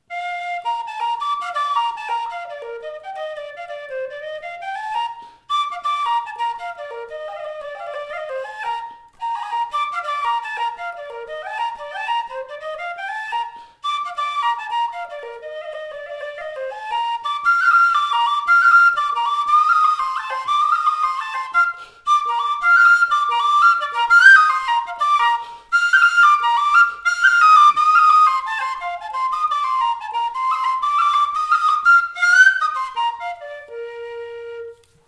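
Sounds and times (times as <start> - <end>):
jig in B flat played on whistles: 0.0 - 35.0.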